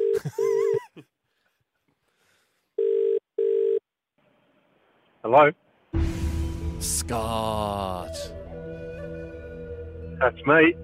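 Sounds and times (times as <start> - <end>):
speech: 0.2 - 0.4, 5.2 - 5.6, 6.8 - 8.4, 10.2 - 10.8
telephone ringback tone: 2.8 - 3.8.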